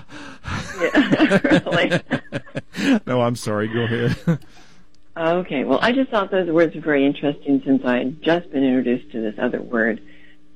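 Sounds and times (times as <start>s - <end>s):
person breathing heavily and gasping: 0.0s - 1.0s, 2.5s - 4.7s
laughter: 0.0s - 4.6s
speech: 0.8s - 2.1s, 3.2s - 10.5s.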